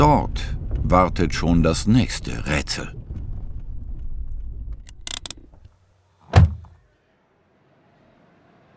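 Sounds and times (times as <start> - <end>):
speech: 0.0 - 3.0
car engine low rumble while driving and parking: 0.0 - 6.8
solid car door thud: 6.2 - 6.8.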